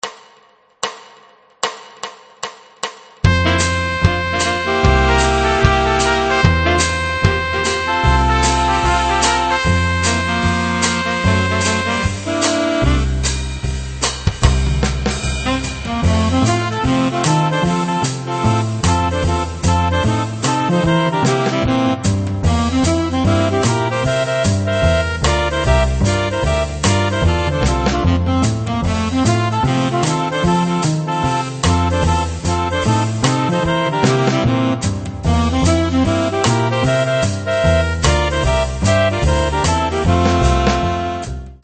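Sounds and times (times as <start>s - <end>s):
saxophones playing swing music at 150 bpm, slowed down for practice: 3.2s - 41.6s.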